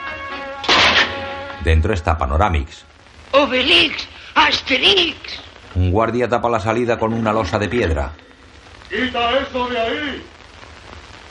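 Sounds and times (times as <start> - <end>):
prison cell door being smashed open: 0.6 - 1.3
speech: 1.6 - 8.3, 8.9 - 10.4.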